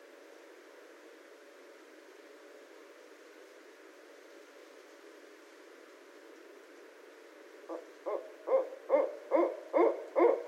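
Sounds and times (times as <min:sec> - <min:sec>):
barred owl hooting: 0:07.7 - 0:10.4.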